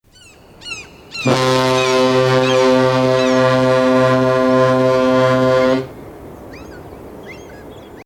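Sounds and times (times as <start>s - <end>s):
ship horn: 1.2s - 6.1s.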